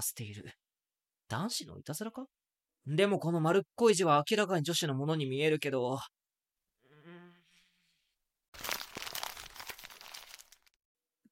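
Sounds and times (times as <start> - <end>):
speech: 0.0 - 0.7, 1.3 - 6.2
person humming: 6.8 - 7.5
handwritten paper letter being crumpled up: 8.6 - 10.8.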